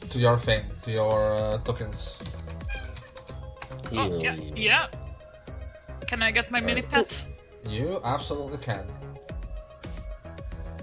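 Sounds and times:
speech: 0:00.1 - 0:02.4, 0:03.9 - 0:05.0, 0:06.1 - 0:09.1
chair squeaking: 0:02.6 - 0:03.3.

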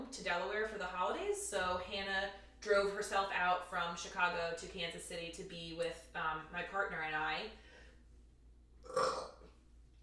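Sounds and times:
speech: 0:00.1 - 0:07.6
person burping: 0:08.8 - 0:09.5.

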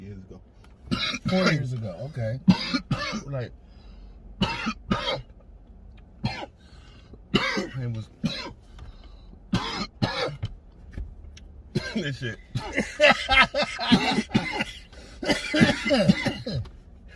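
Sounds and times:
low rumble: 0:00.0 - 0:17.1
speech: 0:00.3 - 0:03.7, 0:04.4 - 0:05.2, 0:07.8 - 0:08.5, 0:12.0 - 0:16.7
person coughing harshly: 0:00.9 - 0:01.5, 0:02.4 - 0:03.4, 0:04.4 - 0:05.3, 0:06.2 - 0:06.5, 0:07.3 - 0:08.6, 0:09.5 - 0:10.4, 0:11.7 - 0:16.7.

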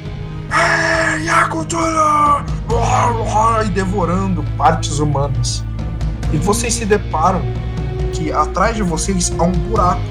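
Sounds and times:
crowd of people jumping at the foot of pyramids yelling and screaming: 0:00.5 - 0:03.2
speech: 0:01.5 - 0:05.7, 0:06.3 - 0:10.0.

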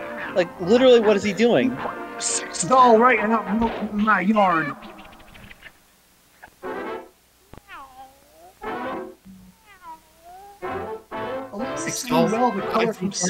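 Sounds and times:
speech: 0:00.3 - 0:04.9, 0:12.4 - 0:13.2
cat meowing with long wavering whiny meows: 0:07.5 - 0:10.9.

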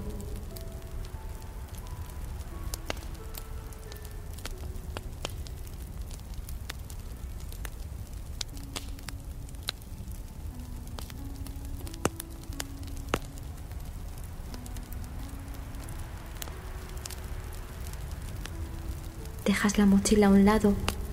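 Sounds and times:
large bonfire crackling with pops and snaps: 0:00.0 - 0:21.1
soft sustained melodic tones: 0:00.0 - 0:21.1
speech: 0:19.5 - 0:21.0.

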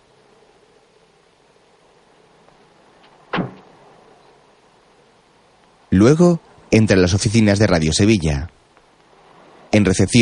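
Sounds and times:
faint steady hush: 0:00.0 - 0:10.1
small dark blue car door being shut: 0:03.3 - 0:03.7
speech: 0:05.9 - 0:08.6, 0:09.7 - 0:10.1.

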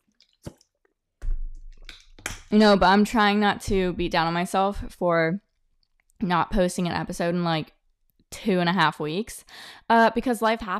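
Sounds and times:
person sipping water: 0:00.0 - 0:00.8
speech: 0:02.5 - 0:05.4, 0:06.2 - 0:10.7.

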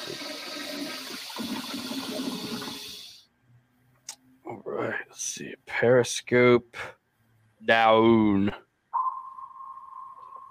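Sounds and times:
toilet flushing with rushing gurgling water: 0:00.0 - 0:03.2
speech: 0:05.2 - 0:07.0, 0:07.6 - 0:08.6.

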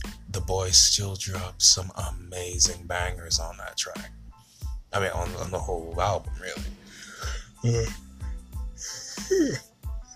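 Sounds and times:
steady thumping beat: 0:00.0 - 0:10.1
speech: 0:00.5 - 0:04.2, 0:04.9 - 0:06.8, 0:07.6 - 0:08.0, 0:08.8 - 0:09.7
breathy vocal noises: 0:06.7 - 0:08.0, 0:08.7 - 0:10.1
person yawning: 0:08.8 - 0:09.6.

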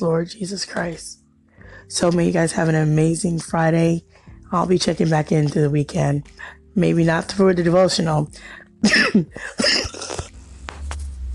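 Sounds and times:
speech: 0:00.0 - 0:09.9
person coughing after choking on an irritated throat: 0:08.8 - 0:10.3.

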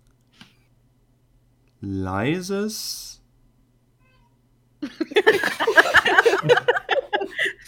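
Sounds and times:
steady low hum: 0:00.0 - 0:07.6
speech: 0:01.8 - 0:03.2
cat meowing: 0:04.0 - 0:04.4
laughter: 0:04.8 - 0:07.6.

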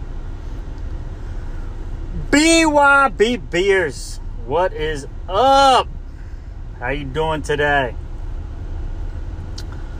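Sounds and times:
car cabin road and engine noise while driving: 0:00.0 - 0:09.9
speech: 0:02.3 - 0:06.0, 0:06.8 - 0:08.0
faint click: 0:09.5 - 0:09.9.

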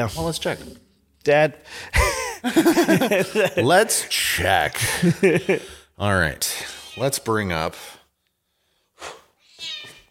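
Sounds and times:
speech: 0:00.0 - 0:08.0
laughter: 0:01.9 - 0:04.0, 0:04.7 - 0:05.8
cat meowing: 0:09.4 - 0:10.1.

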